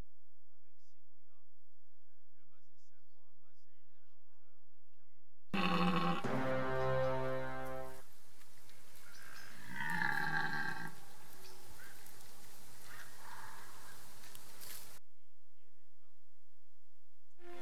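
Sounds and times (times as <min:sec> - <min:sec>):
red deer stag giving a hoarse low rutting roar: 0:05.6 - 0:07.9, 0:09.1 - 0:12.1, 0:12.8 - 0:14.1.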